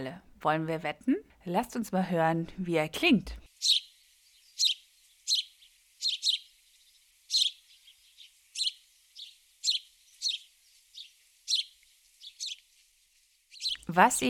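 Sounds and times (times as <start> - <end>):
speech: 0.0 - 3.9, 13.9 - 14.2
house sparrow chirping: 3.5 - 14.2.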